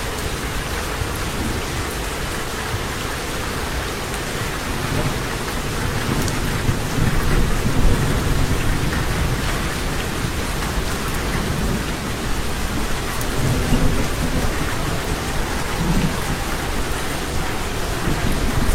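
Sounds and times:
heavy rain: 0.0 - 18.7
deep rolling thunder: 4.5 - 18.7.

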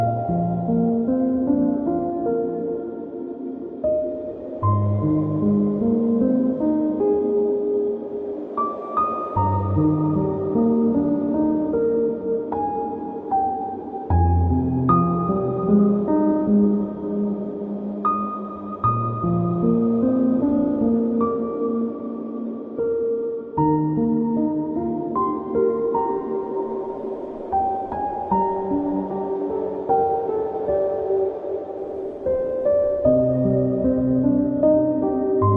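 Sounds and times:
gentle piano music: 0.0 - 35.5.

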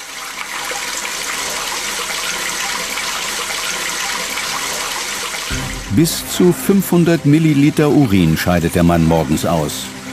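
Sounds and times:
German toilet cistern flushing three liters of water: 0.0 - 10.1
speech: 5.9 - 10.0.

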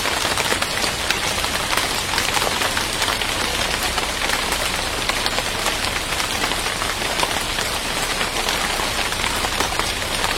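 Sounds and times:
rain falling on palm leaves: 0.0 - 10.3.

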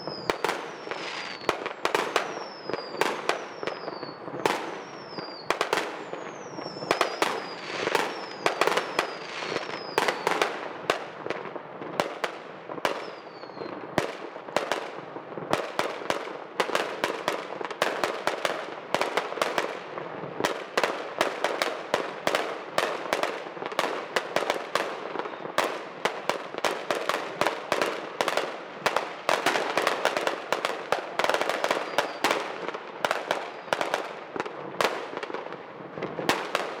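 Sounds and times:
high whistling rockets sliding downward in pitch: 0.0 - 11.1, 12.8 - 14.8, 20.5 - 35.2
fireworks and firecrackers banging and crackling: 0.0 - 36.7.

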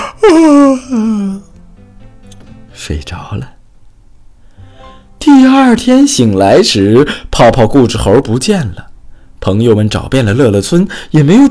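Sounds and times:
person voicing two story characters yawning late at night: 0.0 - 1.5
speech: 0.2 - 1.4, 2.8 - 3.6, 5.3 - 11.5.

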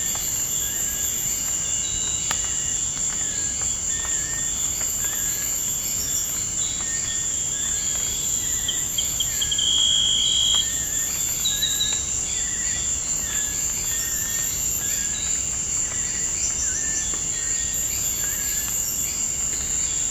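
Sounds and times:
insect and cricket trilling in the Amazon jungle at night: 0.0 - 20.1
insect buzz in the Amazon jungle at night: 7.8 - 11.9.

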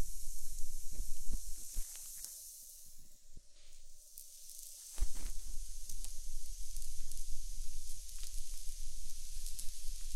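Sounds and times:
ear candle sizzling: 0.1 - 10.1.

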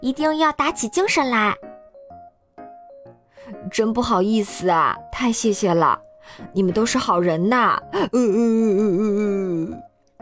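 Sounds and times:
speech: 0.0 - 1.7, 3.6 - 9.9
man crying in a wavering wail: 8.0 - 9.8.

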